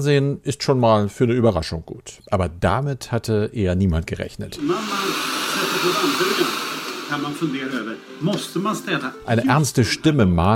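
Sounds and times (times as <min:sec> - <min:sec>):
speech: 0:00.0 - 0:05.2, 0:05.8 - 0:10.5
vacuum cleaner running: 0:04.6 - 0:09.7.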